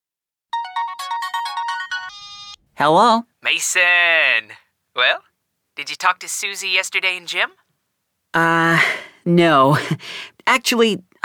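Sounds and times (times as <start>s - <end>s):
telephone ringing with a bright electronic ringtone: 0.6s - 2.6s
speech: 2.8s - 7.6s, 8.3s - 11.2s.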